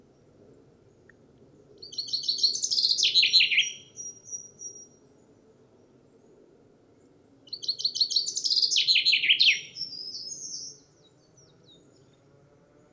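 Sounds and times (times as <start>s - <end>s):
Common chaffinch Fringilla coelebs singing: 1.8s - 5.0s, 7.5s - 12.1s.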